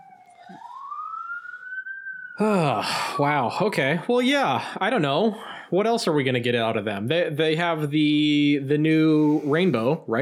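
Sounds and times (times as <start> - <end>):
police siren wailing: 0.0 - 3.7
speech: 2.4 - 10.2.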